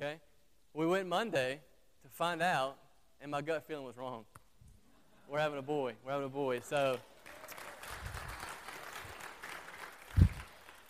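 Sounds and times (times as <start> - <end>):
speech: 0.0 - 4.4, 5.3 - 7.1
church congregation clapping softly: 6.6 - 10.8.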